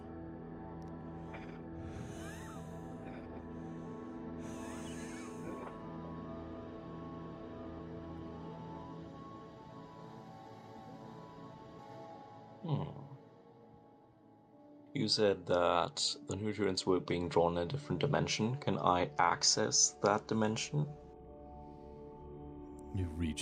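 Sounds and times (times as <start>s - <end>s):
slow heavy hushed breathing: 1.2s - 5.8s
speech: 15.0s - 21.0s, 23.0s - 23.4s.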